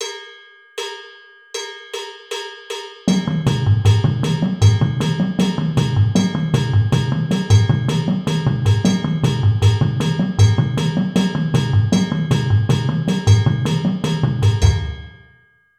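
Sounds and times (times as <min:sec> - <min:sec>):
basses at 156 bpm: 0:03.1 - 0:15.2.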